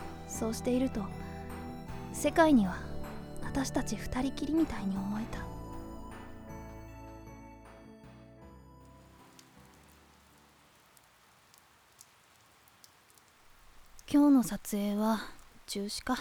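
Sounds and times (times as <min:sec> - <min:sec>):
rain falling: 0:00.0 - 0:02.1, 0:08.9 - 0:16.1
speech: 0:00.4 - 0:01.2, 0:02.2 - 0:05.5, 0:14.1 - 0:16.1
sharp drips: 0:08.9 - 0:16.1.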